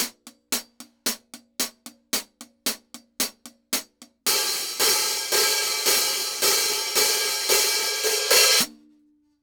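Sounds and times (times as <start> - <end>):
hi-hats: 0.0 - 8.7
cymbals: 4.3 - 8.7.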